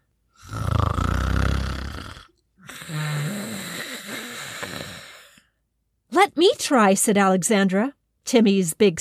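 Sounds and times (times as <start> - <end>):
voice imitating an old man snoring heavily: 0.4 - 5.5
speech: 6.3 - 8.9.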